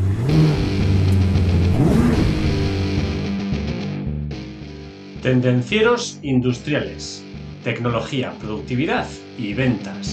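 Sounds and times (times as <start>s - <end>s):
car engine revving: 0.0s - 4.7s
speech: 5.2s - 10.1s.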